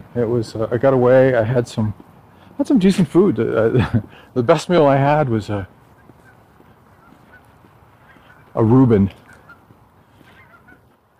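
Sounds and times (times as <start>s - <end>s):
speech: 0.2s - 5.8s, 8.6s - 9.2s
geese honking: 2.8s - 11.1s.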